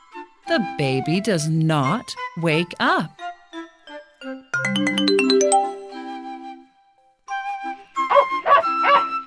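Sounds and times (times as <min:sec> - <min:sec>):
speech: 0:00.5 - 0:03.3
bright rising chime-like tones: 0:04.6 - 0:06.4
dog barking: 0:08.1 - 0:09.2.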